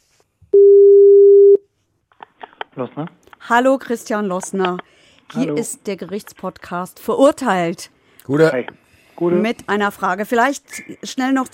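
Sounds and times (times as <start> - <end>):
telephone ringback tone during a call: 0.6 - 1.6
speech: 2.8 - 11.5.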